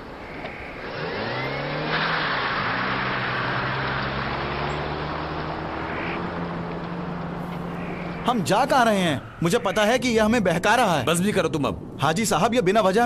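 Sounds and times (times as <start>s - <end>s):
road noise: 0.0s - 13.0s
car engine accelerating: 0.4s - 9.6s
speech: 8.3s - 13.0s.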